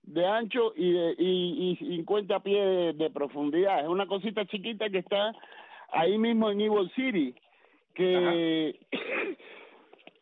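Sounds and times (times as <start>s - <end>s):
speech: 0.1s - 9.5s
person with a cold clearing throat: 8.9s - 9.6s
person with a cold coughing: 8.9s - 9.7s.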